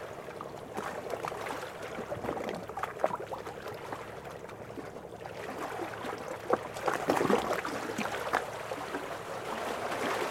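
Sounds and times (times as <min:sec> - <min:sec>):
water lapping and splashing: 0:00.0 - 0:10.2.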